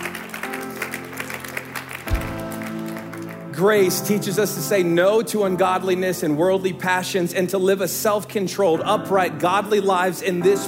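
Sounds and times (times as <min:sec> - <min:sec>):
audience clapping: 0:00.0 - 0:03.9
speech: 0:03.6 - 0:10.6.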